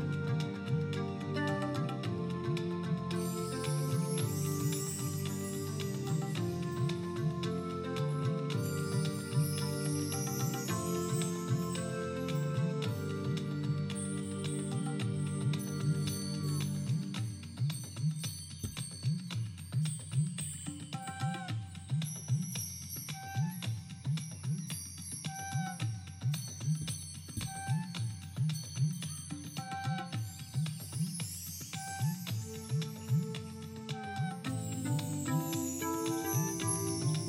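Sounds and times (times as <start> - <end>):
pulsing low rhythm: 0.0 - 18.2
board of chimes ringing: 3.2 - 33.9, 34.5 - 37.2.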